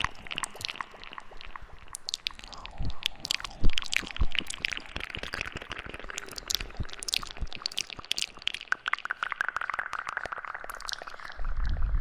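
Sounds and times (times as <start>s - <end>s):
wet mouth clicks, smacks and chewing-like noises with echo: 0.0s - 11.9s.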